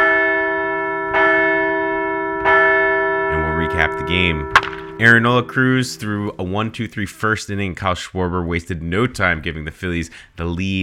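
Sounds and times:
large bell rung to mark a baseball team's fourth straight victory: 0.0 - 6.6
speech: 4.1 - 10.8.

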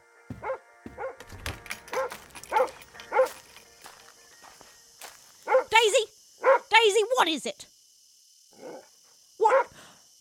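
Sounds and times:
dog barking: 0.4 - 1.2, 1.9 - 3.4, 5.4 - 5.8, 6.4 - 6.7, 9.4 - 9.8
speech: 7.2 - 7.7.

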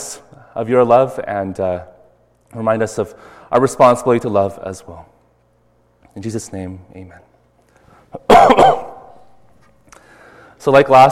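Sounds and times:
speech: 0.5 - 1.9, 2.5 - 5.2, 6.2 - 7.3, 10.6 - 11.1
harsh cough from a dry, slightly sick throat: 8.2 - 9.3.

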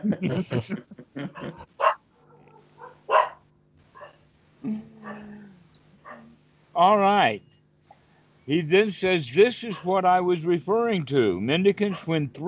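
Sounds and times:
laughter: 0.0 - 1.7
speech: 0.0 - 1.7, 6.8 - 7.5, 8.5 - 12.4
low steady hum: 0.0 - 12.4
dogs barking territorially: 1.4 - 3.4, 4.0 - 4.2, 6.0 - 6.3, 9.7 - 10.0, 11.8 - 12.2.

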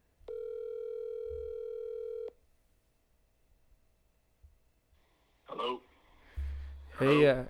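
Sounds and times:
steady electronic phone ringing tone: 0.3 - 2.4
speech: 7.0 - 7.4.

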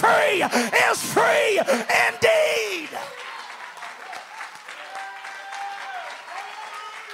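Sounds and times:
speech: 0.2 - 3.1
crowd of many hands clapping: 2.0 - 7.1
faint cheering or voices: 4.1 - 7.1.

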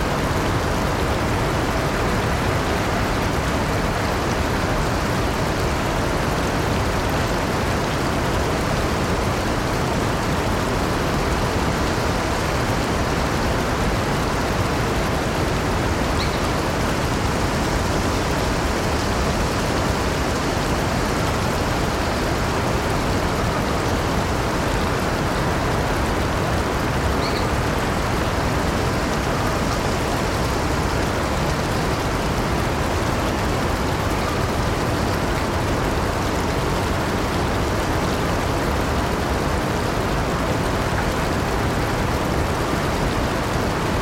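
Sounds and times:
quiet rural stream babbling in a country garden: 0.0 - 44.0.

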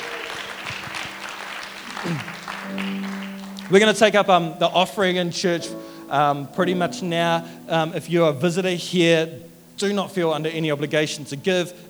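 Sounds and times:
large crowd applauding for the band: 0.0 - 7.8
faint sustained musical tone humming: 0.0 - 11.8
laughter: 0.0 - 11.8
voices calling out: 0.0 - 11.8
speech: 2.0 - 3.1, 3.7 - 11.8.

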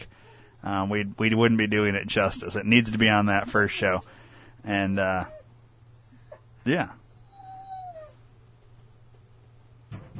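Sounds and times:
speech: 0.6 - 5.4, 6.6 - 7.0
dog whimpering howl: 5.2 - 8.2.

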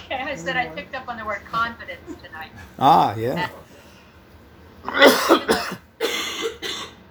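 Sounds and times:
speech: 0.3 - 3.7, 4.8 - 5.8
person coughing harshly: 5.0 - 7.0.

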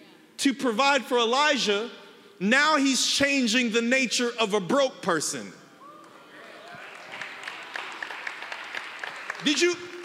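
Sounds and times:
speech: 0.4 - 5.6, 9.4 - 9.9
audience clapping during a sermon: 6.3 - 10.0.

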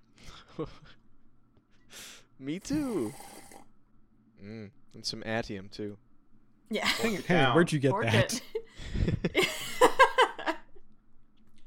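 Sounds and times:
speech: 0.6 - 1.0, 2.4 - 3.3, 4.4 - 6.0, 6.7 - 9.5
sipping and swallowing water: 2.7 - 3.7.

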